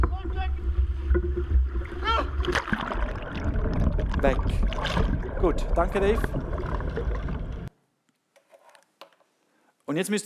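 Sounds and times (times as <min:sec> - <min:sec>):
water surging and splashing around a small fishing boat: 0:00.0 - 0:07.7
people aboard boat shouting: 0:02.0 - 0:02.4
speech: 0:05.4 - 0:06.5, 0:09.9 - 0:10.2.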